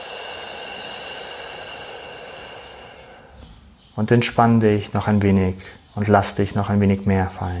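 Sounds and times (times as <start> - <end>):
long deep breath out during a guided meditation: 0.0 - 4.0
speech: 4.0 - 7.5.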